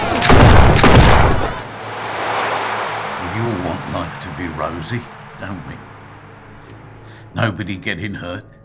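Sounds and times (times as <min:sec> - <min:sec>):
volley of gunshots: 0:00.2 - 0:01.7
speech: 0:04.4 - 0:05.9, 0:07.3 - 0:08.6.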